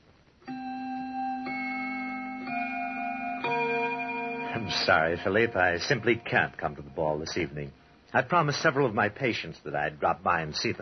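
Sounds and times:
grandfather clock chiming with resonant bell-like notes: 0:00.5 - 0:08.0
speech: 0:04.6 - 0:10.8.

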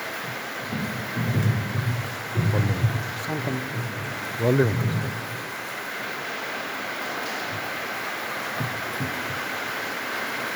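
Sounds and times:
heavy unrelenting rain: 0:00.0 - 0:10.5
deep low rumbles: 0:00.7 - 0:05.5
speech: 0:03.5 - 0:05.1.

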